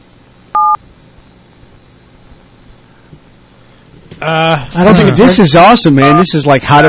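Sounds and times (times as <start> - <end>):
telephone touch-tone keypad beep: 0.6 - 0.8
speech: 4.2 - 6.8.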